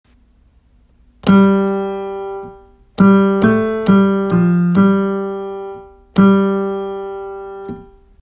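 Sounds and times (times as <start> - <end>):
starting pitch tone: 1.2 - 8.0.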